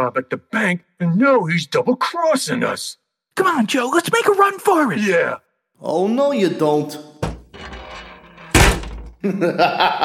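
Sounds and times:
speech: 0:00.0 - 0:07.1, 0:09.2 - 0:10.0
heavy metal bank vault door slamming shut: 0:07.2 - 0:09.2
laughter: 0:09.2 - 0:10.0.

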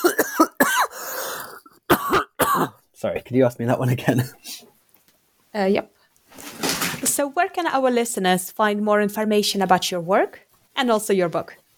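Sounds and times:
loud harsh coughs: 0:00.0 - 0:02.8
raspy drawn breath: 0:00.9 - 0:01.6
speech: 0:03.0 - 0:04.5, 0:05.5 - 0:06.0, 0:07.2 - 0:11.6.

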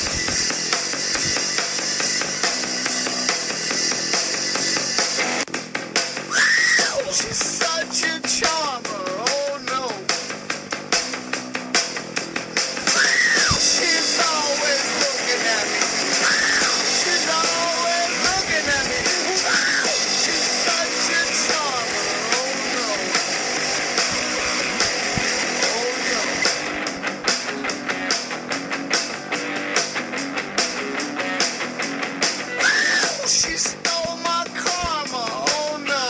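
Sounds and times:
pounding drums: 0:00.0 - 0:28.5, 0:32.3 - 0:36.0
distorted guitars: 0:00.0 - 0:36.0
loud dense rock music: 0:00.0 - 0:36.0
harsh screaming rock vocal: 0:06.3 - 0:07.3, 0:12.9 - 0:14.6, 0:16.1 - 0:17.9, 0:19.2 - 0:20.0, 0:32.6 - 0:34.1.

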